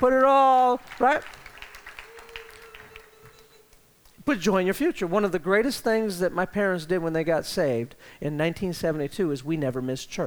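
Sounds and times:
speech: 0:00.0 - 0:01.4, 0:04.3 - 0:10.2
crowd clapping hands in applause: 0:00.0 - 0:04.8
faint steady hum: 0:00.0 - 0:10.2.

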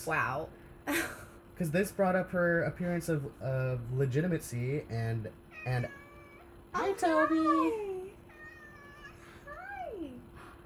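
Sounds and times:
speech: 0:00.0 - 0:06.0, 0:06.8 - 0:07.9
cat meowing: 0:05.5 - 0:10.2.

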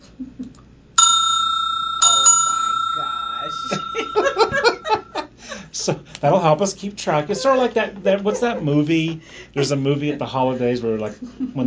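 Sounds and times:
small bright bell struck: 0:01.0 - 0:05.3
people laughing and giggling: 0:03.6 - 0:06.0, 0:07.1 - 0:11.6
speech: 0:05.8 - 0:11.6.

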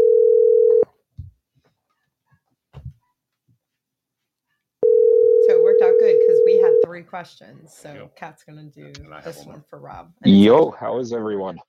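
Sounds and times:
telephone ring tone placing a call: 0:00.0 - 0:00.9, 0:04.8 - 0:06.9
speech: 0:07.1 - 0:11.6.

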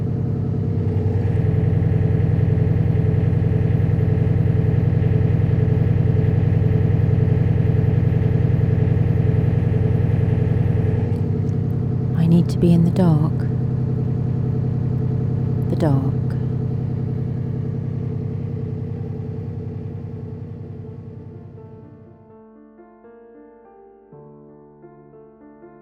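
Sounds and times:
heavy engine running inside an engine room: 0:00.0 - 0:22.1
speech: 0:12.6 - 0:13.6, 0:15.8 - 0:16.2.

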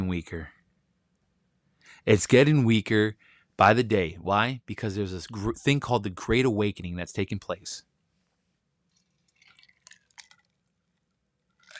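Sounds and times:
speech: 0:00.1 - 0:00.6, 0:02.0 - 0:07.9
person sipping water from a glass: 0:09.0 - 0:10.5.

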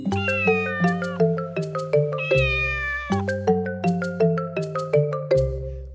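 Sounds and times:
imitated or synthesized cat-like meows following the melody: 0:00.1 - 0:01.4, 0:02.2 - 0:03.3
bouncy musical backing with steady bass line and bright chiming notes: 0:00.2 - 0:05.7.

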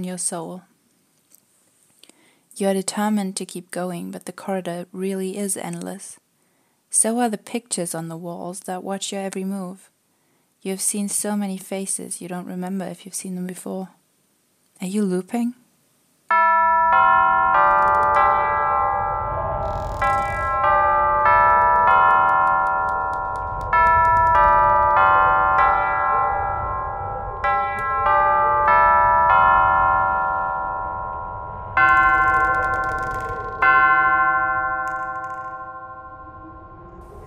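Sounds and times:
speech: 0:00.0 - 0:00.7, 0:02.6 - 0:06.2, 0:06.9 - 0:09.9, 0:10.6 - 0:14.0, 0:14.8 - 0:15.6
clock striking with resonant bell-like strikes: 0:16.3 - 0:19.2, 0:19.9 - 0:26.4, 0:27.4 - 0:30.8, 0:31.8 - 0:36.0.

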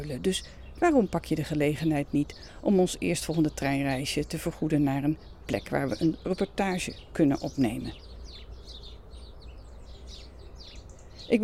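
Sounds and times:
speech: 0:00.0 - 0:08.1, 0:11.3 - 0:11.4
house sparrows chirping in a garden: 0:00.0 - 0:11.4.

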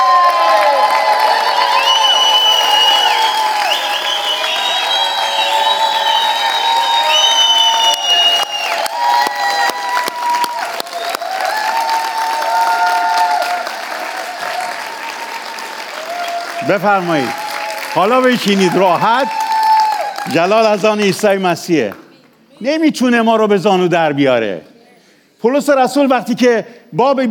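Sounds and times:
whoops: 0:00.0 - 0:16.6, 0:18.6 - 0:20.3
large crowd clapping: 0:00.0 - 0:22.5
speech: 0:16.7 - 0:17.4, 0:18.0 - 0:19.4, 0:20.2 - 0:22.0, 0:22.6 - 0:24.7, 0:25.4 - 0:27.3.

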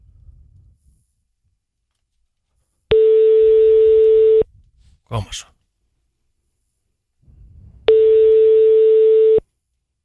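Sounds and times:
telephone ringing tone on an outgoing call: 0:02.9 - 0:04.5, 0:07.9 - 0:09.4
speech: 0:05.1 - 0:05.6.

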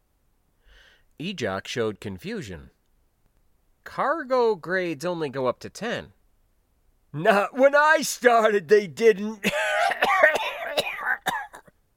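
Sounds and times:
speech: 0:01.2 - 0:02.8, 0:03.9 - 0:06.2, 0:07.1 - 0:09.6
person laughing hoarsely with a rattle: 0:09.4 - 0:11.2
deep wet coughs: 0:09.4 - 0:11.8.

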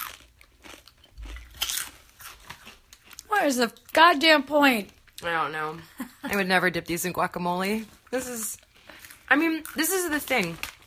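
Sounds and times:
biting and chewing small-batch sweet potato dessert chips: 0:00.0 - 0:04.0, 0:08.1 - 0:10.8
speech: 0:03.4 - 0:08.6, 0:09.3 - 0:10.7.

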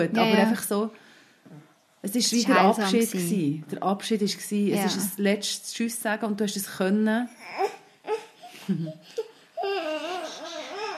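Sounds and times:
speech: 0:00.0 - 0:01.1, 0:02.0 - 0:07.8, 0:08.7 - 0:09.2
baby fussing and babbling: 0:07.3 - 0:10.9.

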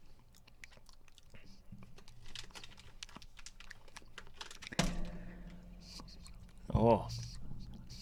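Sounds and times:
snack being torn in half: 0:00.0 - 0:04.8
crinkly wrapper handling: 0:01.3 - 0:04.9
people talking quietly: 0:04.7 - 0:08.0
speech: 0:06.8 - 0:07.2.

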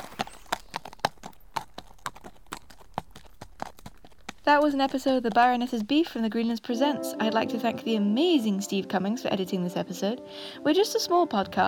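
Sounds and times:
horse trotting out of a courtyard, hooves clip-clopping: 0:00.0 - 0:06.5
speech: 0:04.5 - 0:11.6.

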